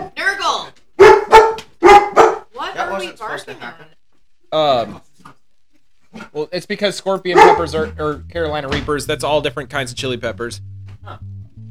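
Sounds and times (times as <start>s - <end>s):
dog barking and yipping: 1.0s - 3.0s, 7.3s - 7.9s
speech: 3.4s - 5.0s, 6.6s - 11.3s.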